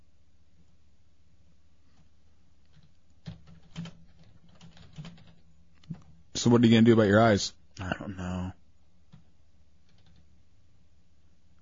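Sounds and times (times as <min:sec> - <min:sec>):
low steady room hum: 0:00.0 - 0:11.5
typing on a computer keyboard: 0:02.0 - 0:06.2, 0:09.1 - 0:10.3
speech: 0:06.4 - 0:08.4.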